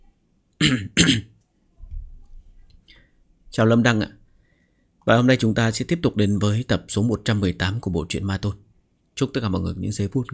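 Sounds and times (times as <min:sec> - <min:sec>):
speech: 0:00.6 - 0:01.3, 0:03.6 - 0:04.2, 0:05.1 - 0:08.6, 0:09.2 - 0:10.3
person coughing while reading aloud: 0:00.6 - 0:01.4.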